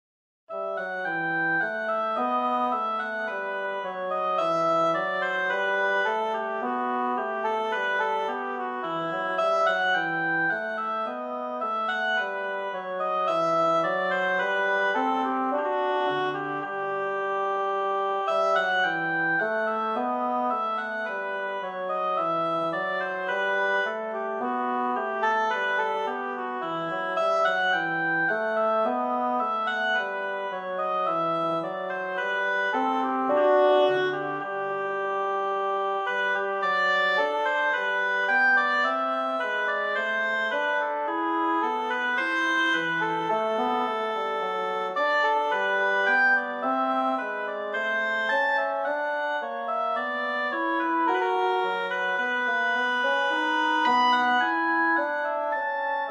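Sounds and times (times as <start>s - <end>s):
bassoon playing a bourree in E minor: 0.5s - 56.0s
oboe playing a bourree in E minor: 0.5s - 56.0s.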